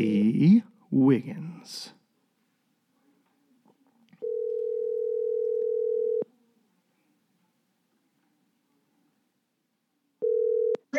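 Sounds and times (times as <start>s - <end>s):
speech: 0.0s - 2.0s
steady telephone tone: 4.2s - 6.3s, 10.2s - 10.9s.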